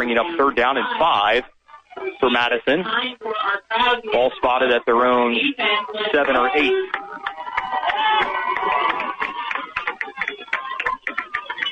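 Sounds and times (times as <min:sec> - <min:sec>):
speech: 0:00.0 - 0:08.8
people clapping: 0:06.0 - 0:11.6
stadium crowd of football fans cheering: 0:06.0 - 0:11.6.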